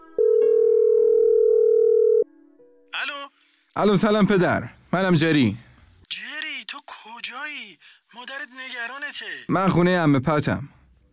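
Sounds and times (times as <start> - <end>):
telephone ring tone on the line: 0.2 - 2.3
speech: 3.8 - 5.6, 9.5 - 11.1.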